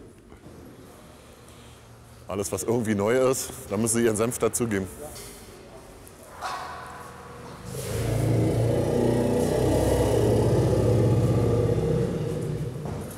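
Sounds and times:
speech: 0:02.3 - 0:05.4
tracked vehicle engine rumble driving into a living room: 0:07.7 - 0:13.1.

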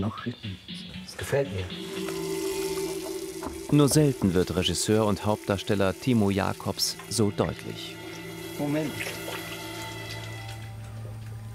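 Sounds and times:
speech: 0:00.0 - 0:02.2, 0:03.4 - 0:08.0, 0:08.6 - 0:09.2
low hum: 0:01.7 - 0:11.5
water running from a tap while hands are washed: 0:01.8 - 0:10.8.

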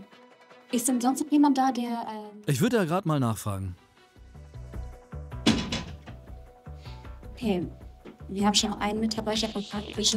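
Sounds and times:
speech: 0:00.7 - 0:03.8, 0:07.4 - 0:10.1
door at a parking enforcement company shutting with a solid thud: 0:05.4 - 0:06.2.

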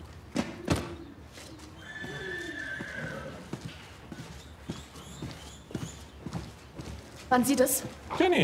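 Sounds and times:
hooves clip-clopping: 0:01.3 - 0:08.4
horse whinnying: 0:01.8 - 0:03.6
speech: 0:07.3 - 0:08.4.

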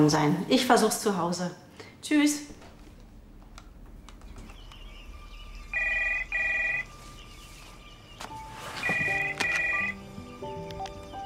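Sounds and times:
speech: 0:00.0 - 0:02.6
faint tonal beeps: 0:04.6 - 0:08.1, 0:08.8 - 0:10.0
telephone ringing with bright electronic trilling: 0:05.7 - 0:06.9, 0:08.8 - 0:10.0.

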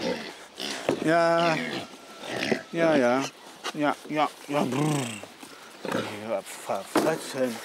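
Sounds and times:
Swabian-Hall pigs grunting at feeding time: 0:00.0 - 0:03.4, 0:04.5 - 0:06.5
drawn-out throaty pig calls: 0:00.0 - 0:06.7
pigs snuffling: 0:00.0 - 0:07.6
speech: 0:01.0 - 0:07.6
shuffling noises: 0:02.8 - 0:07.6.

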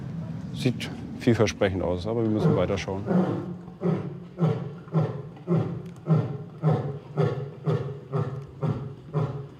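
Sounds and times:
speech: 0:00.6 - 0:05.1
male lion roaring to mark its territory: 0:02.3 - 0:09.5.

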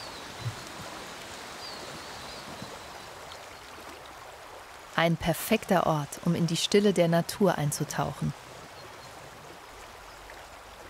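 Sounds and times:
forest brook flowing: 0:00.0 - 0:10.8
speech: 0:05.0 - 0:08.4.

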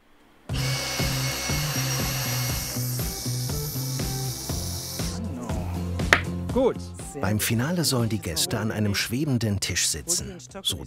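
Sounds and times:
saw cutting wood: 0:00.5 - 0:05.3
speech: 0:06.6 - 0:10.8.

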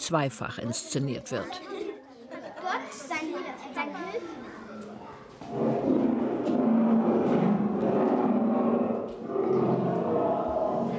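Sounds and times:
speech: 0:00.1 - 0:01.8, 0:05.4 - 0:08.0
school class chattering: 0:00.4 - 0:09.0, 0:09.9 - 0:10.9
lion roars in a children's museum exhibition of the biblical lions' den: 0:05.4 - 0:10.9.

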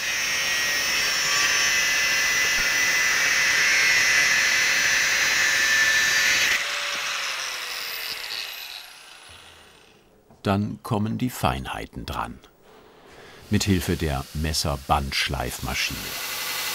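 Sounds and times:
angle grinder cutting metal knife blade contour: 0:00.0 - 0:10.1, 0:13.4 - 0:16.7
speech: 0:10.5 - 0:12.5, 0:13.5 - 0:16.3.

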